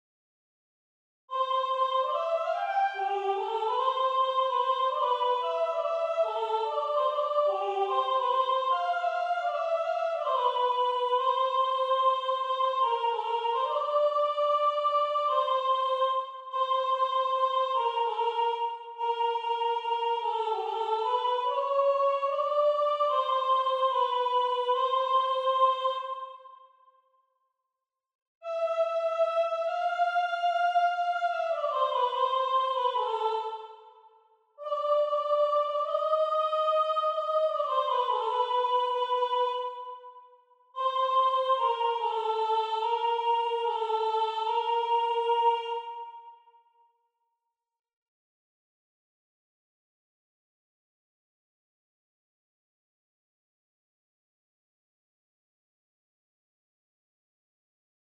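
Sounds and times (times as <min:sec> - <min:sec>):
soprano singing: 0:01.3 - 0:26.5, 0:28.4 - 0:34.0, 0:34.6 - 0:40.1, 0:40.8 - 0:46.4.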